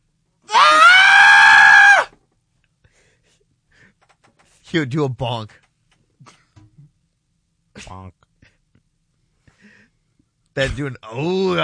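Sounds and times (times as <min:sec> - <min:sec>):
person imitating a distressed scream: 0:00.5 - 0:02.1
speech: 0:04.7 - 0:05.6, 0:10.6 - 0:11.6.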